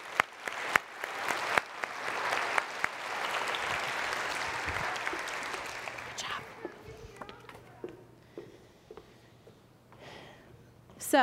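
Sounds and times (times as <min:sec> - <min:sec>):
audience applause: 0:00.0 - 0:06.6.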